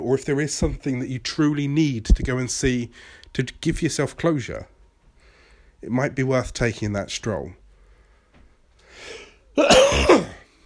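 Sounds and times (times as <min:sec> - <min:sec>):
speech: 0:00.0 - 0:04.7, 0:05.8 - 0:07.6, 0:09.6 - 0:10.1
soft breath in: 0:07.8 - 0:09.4
harsh throat clearing: 0:09.6 - 0:10.5
rough raspy cough: 0:09.6 - 0:10.5.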